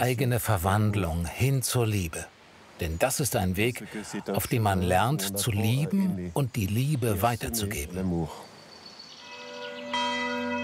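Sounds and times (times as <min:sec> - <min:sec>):
speech: 0:00.0 - 0:08.5
church bells of the Cistercian mother abbey at Cîteaux ringing for prayer: 0:09.3 - 0:10.6.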